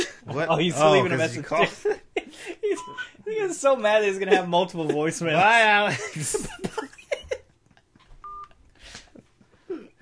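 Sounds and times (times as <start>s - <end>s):
laughter: 0.0s - 3.2s, 4.2s - 8.0s
speech: 0.3s - 2.0s, 3.4s - 6.7s
phone dialing tone beep: 8.2s - 8.5s.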